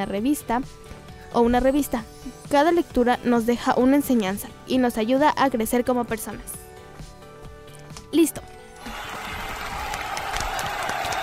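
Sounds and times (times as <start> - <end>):
speech: 0.0 - 6.6
person clapping for themselves: 8.8 - 11.2.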